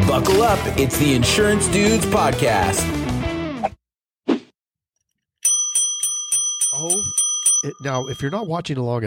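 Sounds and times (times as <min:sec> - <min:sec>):
speech: 0:00.1 - 0:03.0, 0:06.8 - 0:09.0
short bicycle-style bell rung with a nose: 0:05.5 - 0:08.6.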